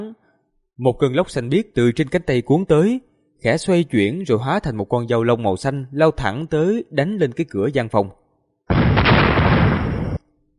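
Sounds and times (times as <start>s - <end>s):
speech: 0.8s - 8.8s
series of explosions: 8.7s - 10.3s.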